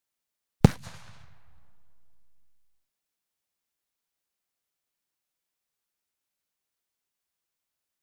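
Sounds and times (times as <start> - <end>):
gelignite sticks exploding: 0.7 - 1.9.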